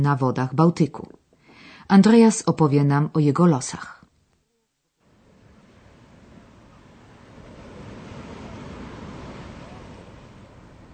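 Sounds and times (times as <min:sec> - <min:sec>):
speech: 0:00.0 - 0:01.2, 0:01.9 - 0:04.0
wind: 0:04.3 - 0:10.9
sea waves on the rocky coast of Rügen, Germany: 0:05.0 - 0:10.9.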